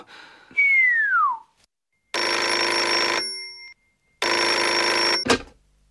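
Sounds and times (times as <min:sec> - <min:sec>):
brief descending whistle-like tone: 0:00.6 - 0:01.5
old telephone bell ringing at a residence: 0:02.1 - 0:05.3.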